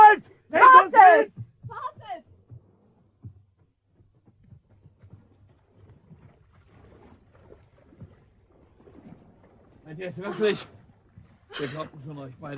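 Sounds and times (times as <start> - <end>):
water lapping: 0.0 - 12.5
hollow wooden knocks of a rowboat being pushed off: 1.3 - 5.3
speech: 10.0 - 10.7, 11.6 - 12.5.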